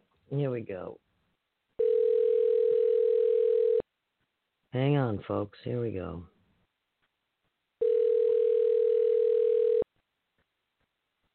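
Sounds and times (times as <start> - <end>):
speech: 0.3 - 1.1, 4.7 - 6.3
telephone ringing tone on an outgoing call: 1.8 - 3.8, 7.8 - 9.8.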